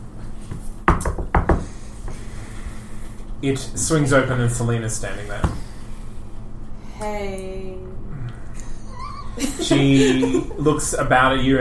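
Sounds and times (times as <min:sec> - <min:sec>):
sharp knocking on a door: 0:00.9 - 0:01.7
speech: 0:03.4 - 0:05.6, 0:07.0 - 0:08.0, 0:09.4 - 0:11.5
laughter: 0:08.7 - 0:11.0.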